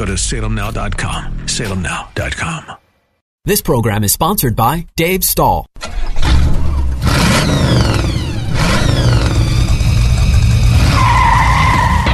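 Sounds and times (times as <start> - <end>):
speech: 0.0 - 2.8, 3.4 - 6.3
loud car engines revving and roaring: 5.8 - 12.1
tires squealing: 5.9 - 12.1.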